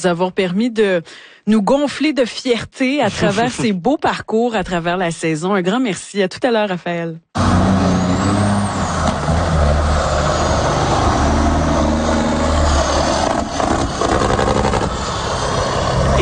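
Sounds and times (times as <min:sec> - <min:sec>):
speech: 0:00.0 - 0:07.7
heavy truck engines roaring at a truck fair: 0:07.4 - 0:16.2.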